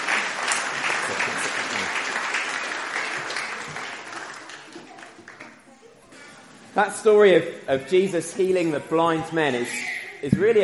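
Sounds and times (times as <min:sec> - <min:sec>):
audience clapping: 0:00.0 - 0:05.7
speech: 0:06.8 - 0:10.6.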